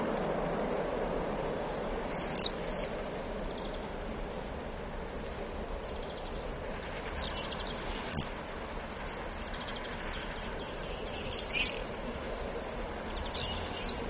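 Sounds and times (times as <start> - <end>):
common swifts giving shrill screaming calls: 0.0 - 14.0
low background rumble: 0.0 - 14.0.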